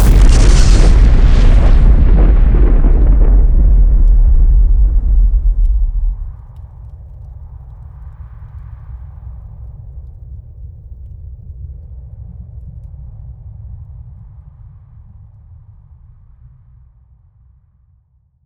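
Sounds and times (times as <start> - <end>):
ultra explosion: 0.0 - 6.5.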